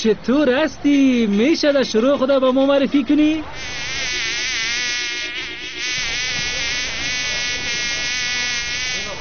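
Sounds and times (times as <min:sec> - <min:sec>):
speech: 0:00.0 - 0:03.8
fly buzzing at a garbage bin: 0:03.6 - 0:09.1.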